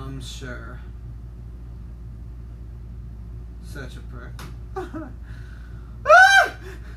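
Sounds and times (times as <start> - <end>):
speech: 0.1 - 0.9, 3.7 - 5.4
short high-pitched scream: 6.0 - 6.8.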